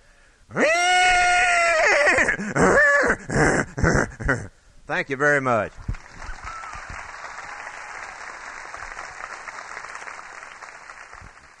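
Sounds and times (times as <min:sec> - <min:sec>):
person imitating horse whinny: 0:00.5 - 0:04.5
speech: 0:05.0 - 0:05.9.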